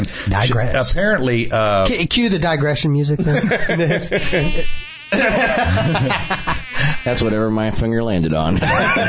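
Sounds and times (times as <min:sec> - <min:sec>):
speech: 0:00.0 - 0:06.4, 0:07.1 - 0:09.0
laughter: 0:03.2 - 0:07.0, 0:08.5 - 0:09.0
fly buzzing and droning: 0:03.9 - 0:07.7.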